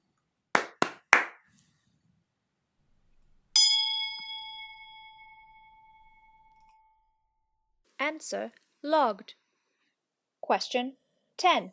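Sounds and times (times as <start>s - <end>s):
sharp hand claps: 0.5s - 1.5s
bright bell strike: 3.6s - 7.2s
speech: 8.0s - 9.4s, 10.5s - 11.7s.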